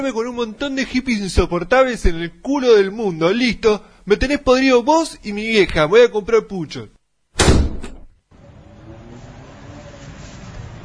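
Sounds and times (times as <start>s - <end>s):
speech: 0.0s - 7.0s
door slamming shut: 7.4s - 8.1s.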